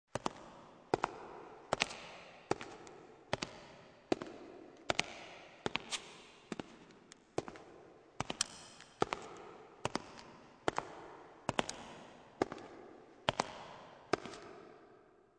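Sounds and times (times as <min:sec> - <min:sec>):
footsteps in high heels: 0:00.2 - 0:14.6.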